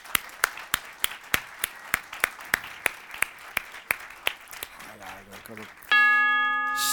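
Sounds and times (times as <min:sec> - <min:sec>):
rhythmic clapping: 0:00.0 - 0:06.9
gong-like metallic chime: 0:05.9 - 0:06.9.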